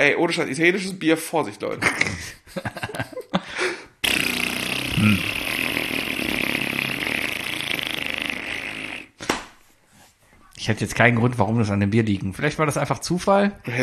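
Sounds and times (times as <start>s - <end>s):
speech: 0.0s - 2.9s, 10.7s - 13.8s
person imitating farting with voice: 4.0s - 9.2s
short vocal noises: 4.0s - 9.3s.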